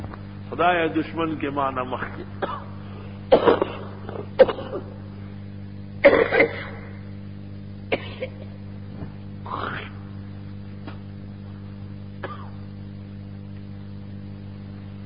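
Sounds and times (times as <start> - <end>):
steady low hum: 0.0 - 15.0
speech: 0.5 - 2.6, 3.3 - 3.7
person coughing harshly: 2.2 - 5.0, 6.0 - 7.0, 7.9 - 8.6, 12.2 - 12.6
rough throat clearing: 2.2 - 5.0, 6.0 - 7.0, 7.9 - 8.6, 12.2 - 12.6.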